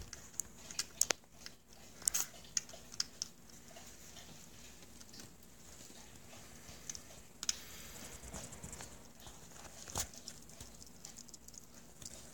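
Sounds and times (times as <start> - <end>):
hedgehog crunching and chewing its dinner: 0.0 - 12.3
low steady hum: 0.0 - 12.3.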